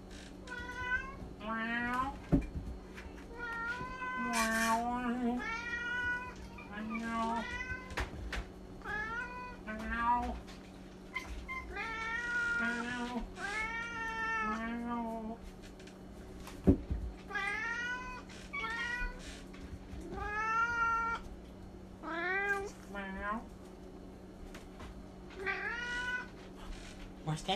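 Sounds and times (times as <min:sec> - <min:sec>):
low steady hum: 0:00.0 - 0:27.5
several cats meowing while being offered food: 0:00.4 - 0:02.3, 0:03.1 - 0:15.4, 0:17.2 - 0:21.3, 0:22.0 - 0:23.5, 0:25.3 - 0:26.8.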